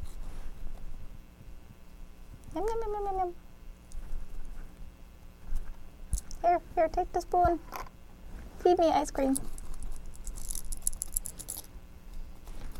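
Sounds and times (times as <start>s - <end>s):
speech: 2.6s - 3.4s, 6.4s - 7.8s, 8.6s - 9.5s
colorful plastic toy keys jangling and clacking: 9.3s - 11.7s.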